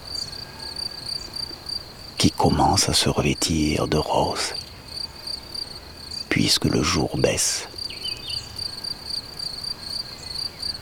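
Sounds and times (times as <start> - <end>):
crickets chirping: 0.0 - 10.8
soft low rumble of open-air ambience: 0.0 - 10.8
speech: 2.2 - 4.7, 6.3 - 7.8.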